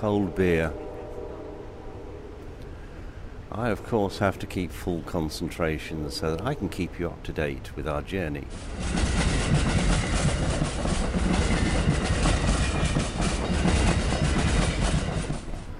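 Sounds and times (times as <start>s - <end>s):
speech: 0.0s - 0.9s, 3.5s - 10.0s
train wheels clattering over a track junction heard from on board: 8.4s - 15.7s.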